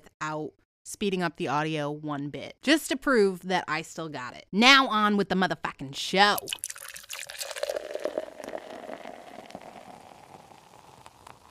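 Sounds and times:
speech: 0.3s - 7.0s
hot water pouring into a pour-over filter of Vietnamese coffee: 6.4s - 11.5s.

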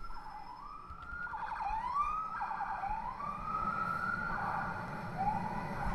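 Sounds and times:
New York police car siren wailing on a city street: 0.0s - 5.9s
low rumble of city street traffic: 0.0s - 5.9s.

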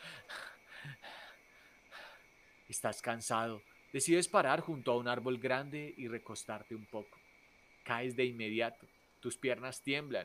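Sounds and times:
rapid heavy ragged breathing: 0.0s - 2.2s
speech: 2.7s - 7.2s, 7.9s - 10.2s.

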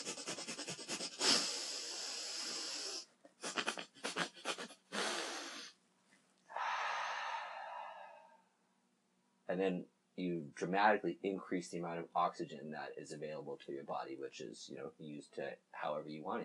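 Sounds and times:
pump breath, rapid forceful meditation breathing: 0.0s - 5.8s, 6.5s - 8.4s
speech: 9.5s - 16.4s.

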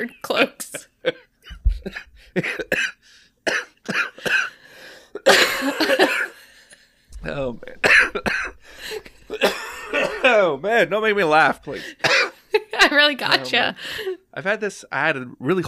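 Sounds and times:
speech: 0.0s - 0.9s, 10.8s - 12.0s, 12.9s - 15.6s
person with a lingering cough after a sore throat coughing: 1.8s - 4.6s, 5.2s - 6.4s, 7.2s - 10.4s, 11.8s - 12.4s.

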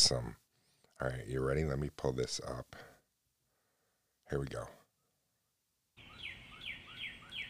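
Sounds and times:
speech: 0.0s - 0.4s, 1.0s - 2.9s, 4.3s - 4.8s
outdoor hiss: 0.0s - 7.4s
birds chirping at dawn in a backyard: 4.6s - 7.4s.

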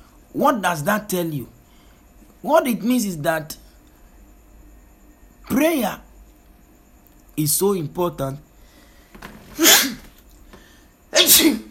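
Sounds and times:
speech: 0.4s - 1.6s, 2.4s - 3.6s, 5.5s - 6.0s, 7.4s - 8.5s
person sneezing: 9.5s - 10.2s, 11.1s - 11.6s.

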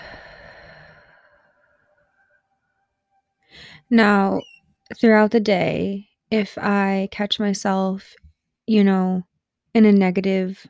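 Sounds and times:
slow out-breath during a guided breathing exercise: 0.0s - 2.0s, 3.4s - 3.9s
speech: 3.7s - 10.6s.

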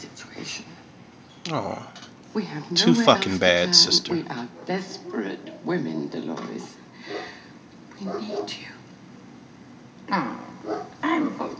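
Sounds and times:
speech: 1.5s - 7.2s, 8.0s - 8.8s, 10.1s - 11.5s
dog yelping barks: 7.1s - 7.3s, 8.0s - 8.6s, 10.6s - 11.0s.

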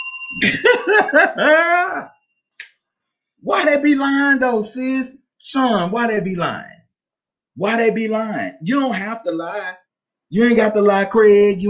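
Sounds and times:
hand bell ringing: 0.0s - 0.8s
speech: 0.3s - 2.2s, 3.4s - 6.8s, 7.6s - 11.6s
laughter or coughing: 0.4s - 2.1s.

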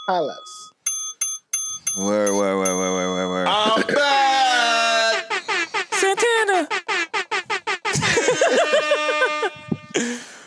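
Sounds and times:
notification bell dings: 0.0s - 3.9s
speech: 0.1s - 0.7s, 2.0s - 4.2s
laughter: 2.6s - 10.4s.

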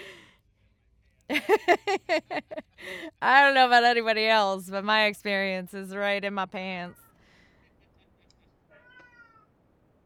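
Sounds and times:
low hiss: 0.0s - 10.0s
speech: 3.2s - 7.0s
cat meowing: 8.7s - 9.5s.

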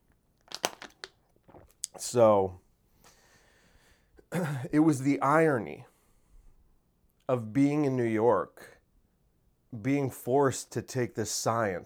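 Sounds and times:
crinkly crunchy bursts: 0.5s - 1.7s
person sipping water: 0.5s - 2.0s
speech: 2.0s - 2.6s, 4.4s - 5.9s, 7.3s - 8.7s, 9.7s - 11.8s.

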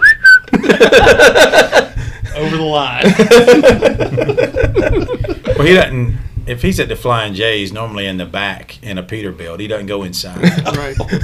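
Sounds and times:
shrill whistle blown with steady tone and warble: 0.0s - 0.5s
laughter: 0.5s - 5.9s, 10.4s - 11.2s
speech: 0.7s - 1.8s, 2.5s - 4.4s, 5.6s - 11.2s.

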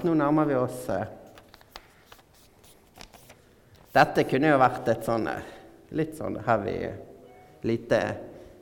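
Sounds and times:
speech: 0.0s - 1.2s, 4.0s - 8.3s
paper sheet folded by hand into an origami paper plane: 1.3s - 4.0s.

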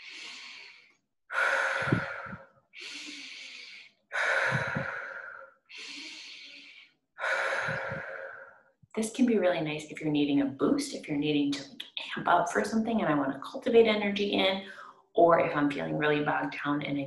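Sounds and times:
deep breathing in through the nose and out through the mouth: 0.0s - 8.8s
speech: 9.0s - 17.0s.

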